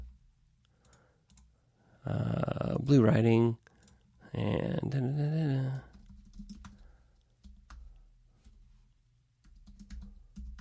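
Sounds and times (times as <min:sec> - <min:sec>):
typing on a computer keyboard: 0:00.8 - 0:01.5, 0:03.7 - 0:04.1, 0:05.9 - 0:08.6, 0:09.4 - 0:10.5
speech: 0:02.0 - 0:03.6, 0:04.3 - 0:05.9.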